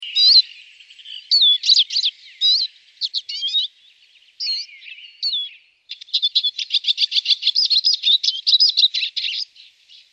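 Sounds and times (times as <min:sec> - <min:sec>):
Eurasian siskin calling: 0:00.0 - 0:10.1.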